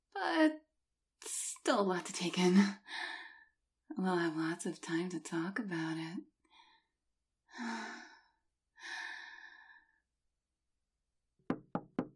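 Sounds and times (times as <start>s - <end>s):
speech: 1.7s - 3.1s, 4.0s - 6.3s, 7.6s - 8.1s
quick sharp knocks on a door: 11.5s - 12.1s.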